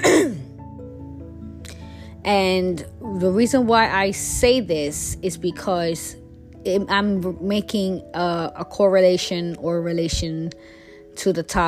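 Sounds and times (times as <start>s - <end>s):
raspy throat clearing: 0.0s - 0.5s
speech: 2.2s - 11.6s.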